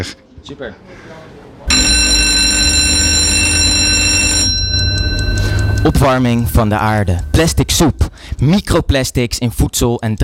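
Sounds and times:
speech: 0.0s - 1.4s, 5.8s - 10.2s
murmur: 0.0s - 8.7s
loud electronic timer buzzer marking start of pitch: 1.7s - 7.4s.

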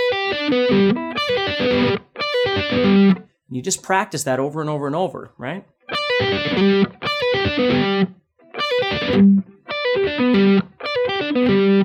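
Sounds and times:
dry slightly distorted electric guitar picking an arpeggio: 0.0s - 3.3s, 5.8s - 11.8s
speech: 2.7s - 8.2s, 8.8s - 11.8s.

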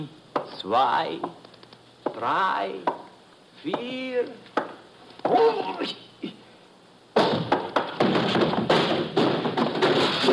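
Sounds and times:
speech: 0.0s - 1.5s, 2.2s - 3.0s, 3.6s - 4.5s, 5.3s - 6.1s
heavy barrel striking a person: 7.2s - 10.3s.

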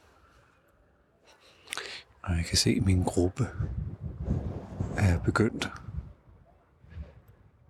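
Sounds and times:
speech: 2.2s - 3.8s, 5.0s - 5.8s
wind gusting into the microphone outdoors: 2.5s - 7.6s.

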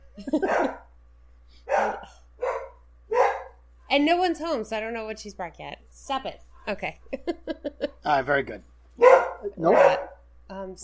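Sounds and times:
speech: 0.2s - 0.8s, 4.0s - 10.8s
dog barking: 0.4s - 0.9s, 1.6s - 3.6s, 9.0s - 10.2s.

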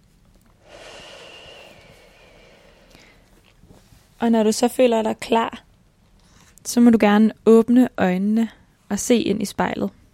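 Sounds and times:
long deep breath drawn in: 0.6s - 3.8s
speech: 4.2s - 5.6s, 6.7s - 10.0s.

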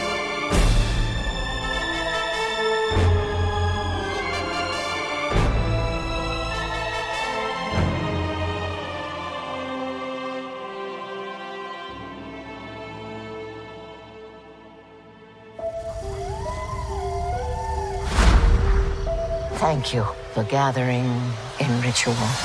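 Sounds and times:
dark droning music: 0.0s - 22.4s
wavering eerie monster howl: 15.7s - 18.9s
speech: 19.6s - 22.4s.

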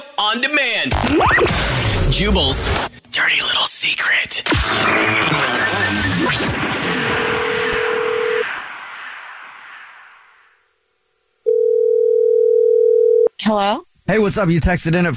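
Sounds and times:
speech: 0.2s - 6.9s, 13.5s - 15.1s
telephone dial tone while calling back a listener: 7.8s - 8.4s, 11.5s - 13.3s.

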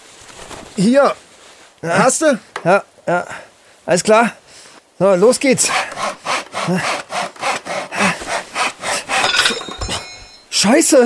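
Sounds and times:
speech: 0.8s - 1.2s, 1.8s - 4.4s, 5.0s - 7.0s, 10.6s - 11.0s
hand saw cutting through wood of a tree: 5.6s - 10.5s.

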